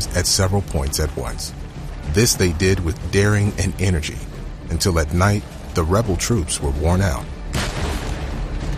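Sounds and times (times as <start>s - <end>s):
speech: 0.0s - 7.4s
heavy cannon fire booming: 7.5s - 8.6s.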